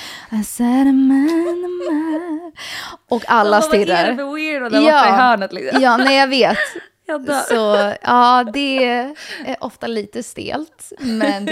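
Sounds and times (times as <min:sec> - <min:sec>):
speech: 0:00.3 - 0:11.5
person humming a short wordless melody: 0:00.6 - 0:02.6
laughter: 0:01.2 - 0:02.4, 0:04.8 - 0:09.4, 0:11.0 - 0:11.5.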